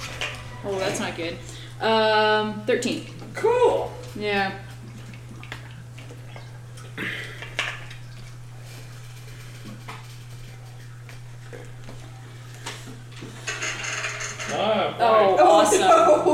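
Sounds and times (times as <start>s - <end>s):
steady low hum: 0.0s - 16.3s
speech: 0.6s - 4.7s
dice clattering across a hard table: 13.4s - 14.6s
laughter: 15.4s - 16.3s.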